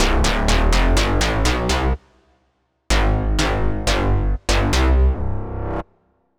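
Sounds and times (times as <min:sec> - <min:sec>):
big boom bass: 0:00.0 - 0:02.0, 0:02.9 - 0:05.8.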